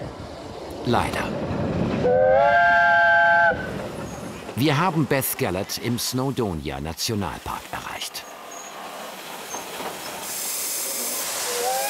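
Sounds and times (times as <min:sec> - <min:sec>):
continuous rolling train rumble: 0:00.0 - 0:11.8
speech: 0:00.8 - 0:01.4, 0:04.6 - 0:08.2
train whistle on a railway near Beddgelert in Snowdonia National Park: 0:02.0 - 0:03.7, 0:11.4 - 0:11.8.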